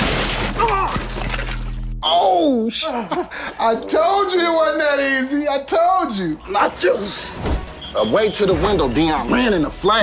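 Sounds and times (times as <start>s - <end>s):
snack table shattering with a splintering crash: 0.0s - 1.8s
debris thudding: 0.0s - 1.9s
speech: 2.6s - 10.0s.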